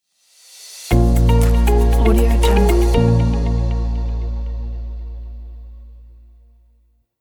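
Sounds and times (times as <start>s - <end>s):
business logo music: 0.9s - 6.1s.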